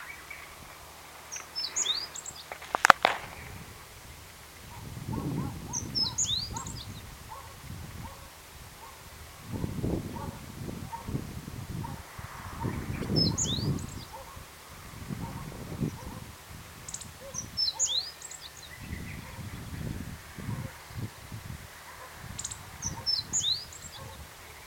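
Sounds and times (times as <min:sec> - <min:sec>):
low background noise: 0:00.0 - 0:24.6
meadow bunting song with brief high twittering phrases: 0:01.3 - 0:02.6, 0:05.6 - 0:07.0, 0:12.6 - 0:14.2, 0:16.9 - 0:19.4.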